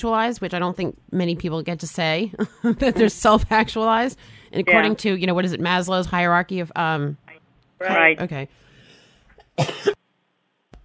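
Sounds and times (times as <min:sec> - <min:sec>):
speech: 0:00.0 - 0:07.2, 0:07.8 - 0:08.6, 0:09.6 - 0:10.0
throaty cough: 0:09.4 - 0:10.0.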